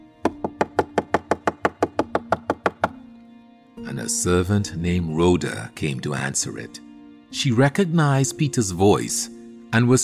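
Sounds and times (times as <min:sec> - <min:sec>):
sharp knocks on a door: 0:00.2 - 0:03.0
speech: 0:03.8 - 0:10.0.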